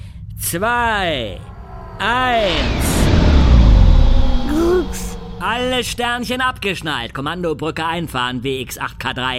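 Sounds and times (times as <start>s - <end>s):
speech: 0.5s - 2.8s, 4.5s - 9.3s
sci-fi spaceship engine roar winding down as the ship brakes: 1.1s - 6.5s
whining sweeping tones: 1.2s - 6.5s.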